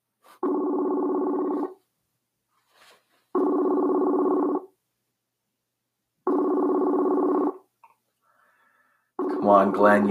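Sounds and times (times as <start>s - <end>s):
telephone ringback tone on an outgoing phone call: 0.4s - 1.8s, 3.4s - 4.7s, 6.3s - 7.6s, 9.2s - 9.7s
speech: 9.5s - 10.1s.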